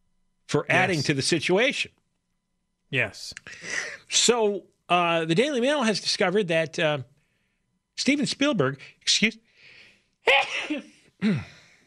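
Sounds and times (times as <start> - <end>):
speech: 0.5 - 2.0, 2.9 - 7.1, 8.0 - 9.4, 10.2 - 11.6
person sneezing: 10.2 - 11.6.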